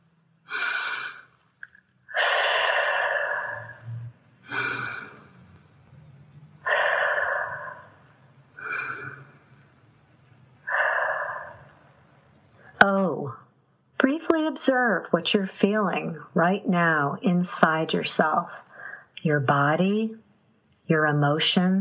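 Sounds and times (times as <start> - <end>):
faint low hum: 0.0 - 21.7
slow deep breaths: 0.5 - 1.4, 2.1 - 5.7, 6.6 - 12.8, 18.5 - 19.2
speech: 14.6 - 20.2, 20.9 - 21.7.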